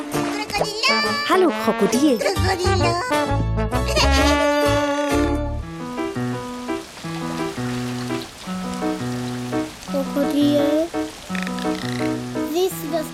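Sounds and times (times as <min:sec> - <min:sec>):
gentle melodic music track: 0:00.0 - 0:13.1
speech: 0:00.6 - 0:03.4
steady rain pattering: 0:05.6 - 0:13.1.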